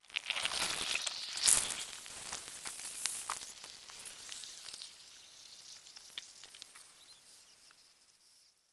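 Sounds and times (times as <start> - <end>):
gore squeezing flesh: 0.0 - 3.9.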